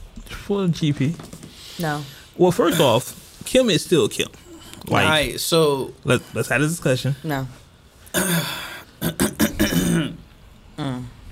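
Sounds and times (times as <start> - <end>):
speech: 0.5 - 9.2
person clearing throat: 8.1 - 10.2.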